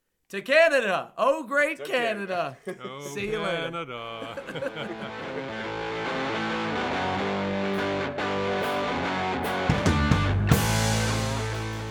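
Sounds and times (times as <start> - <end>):
speech: 0.3 - 5.8
laughter: 2.6 - 6.4
rock song with distorted guitars and drums: 4.6 - 11.8.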